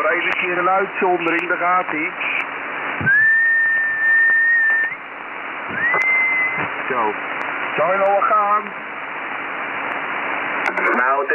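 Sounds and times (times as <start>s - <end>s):
hiss: 0.0s - 11.3s
speech: 0.1s - 3.2s, 6.9s - 8.9s, 10.8s - 11.3s
steady whistle tone sent over an amateur radio band at 5 watts: 3.0s - 5.0s, 5.7s - 6.7s.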